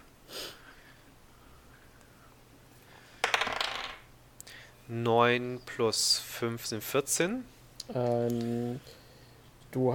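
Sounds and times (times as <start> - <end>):
dice rattling and clattering across a hard surface: 3.2 - 4.0
speech: 4.9 - 9.0, 9.7 - 9.9.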